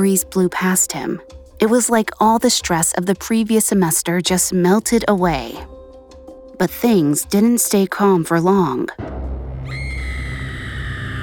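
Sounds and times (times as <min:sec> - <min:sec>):
speech: 0:00.0 - 0:05.8, 0:06.6 - 0:09.8
woman's piercing ear-splitting high-pitched scream in a courtyard: 0:09.7 - 0:11.2.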